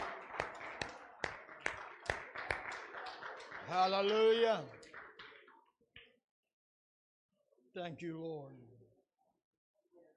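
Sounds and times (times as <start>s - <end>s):
audience clapping hands in a steady rhythm: 0.0s - 5.8s
crowd noise: 0.0s - 5.8s
speech: 3.7s - 4.9s, 7.8s - 8.9s.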